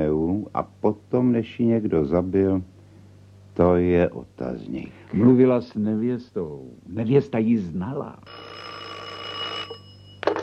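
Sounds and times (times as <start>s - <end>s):
speech: 0.6s - 2.7s, 3.6s - 8.7s
telephone bell ringing with an incoming long-distance call: 8.3s - 10.4s.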